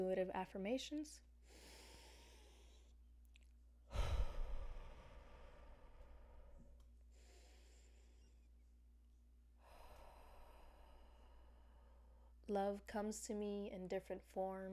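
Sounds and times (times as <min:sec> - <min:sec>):
speech: 0:00.0 - 0:01.8, 0:12.5 - 0:14.7
slow deep breathing exercise: 0:01.4 - 0:03.0, 0:03.9 - 0:08.5, 0:09.6 - 0:12.4.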